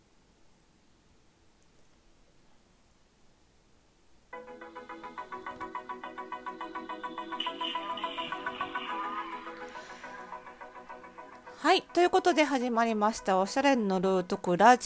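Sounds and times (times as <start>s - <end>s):
bright tonal jingle with pulsing rhythm of repeated notes: 4.7s - 12.4s
speech: 11.7s - 14.8s.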